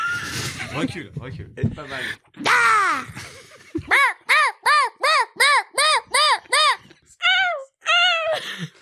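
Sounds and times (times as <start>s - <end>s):
speech: 0.7s - 3.3s
person imitating seagull calls: 3.9s - 8.4s.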